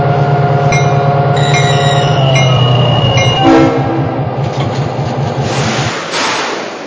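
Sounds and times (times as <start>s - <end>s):
passenger train rumbling along rails with clatter of wheels: 0.6s - 6.8s
horn-like tone of passenger train: 1.4s - 4.2s.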